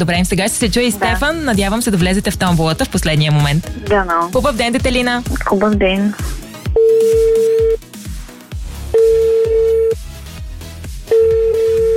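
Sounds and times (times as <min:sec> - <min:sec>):
speech: 0:00.0 - 0:07.6
rhythmic music bed: 0:00.0 - 0:11.9
radio station outgoing phone call ringback tones: 0:06.8 - 0:07.8, 0:09.0 - 0:10.0, 0:11.1 - 0:11.9.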